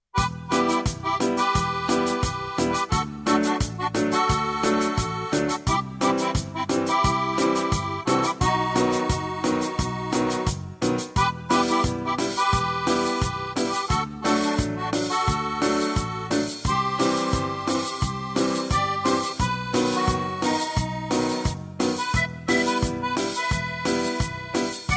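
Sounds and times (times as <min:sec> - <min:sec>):
cumbia music: 0:00.1 - 0:24.9.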